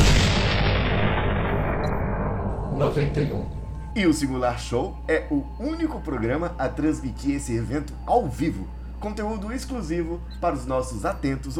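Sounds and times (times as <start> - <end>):
single heavy booming gunshot: 0.0 - 2.5
dense low rumble: 0.0 - 10.6
speech: 2.8 - 11.5.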